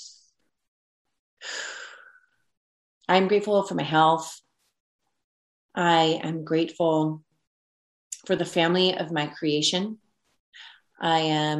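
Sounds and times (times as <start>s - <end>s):
faint breathy sound: 1.4s - 2.4s
speech: 3.1s - 4.4s, 5.8s - 7.3s, 8.2s - 11.5s.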